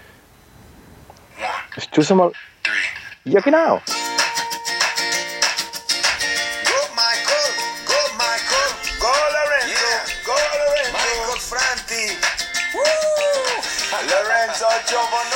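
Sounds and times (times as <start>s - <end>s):
speech: 1.8s - 2.5s, 3.2s - 4.0s
pop song with a steady driving groove and sung lead vocal: 3.9s - 15.3s.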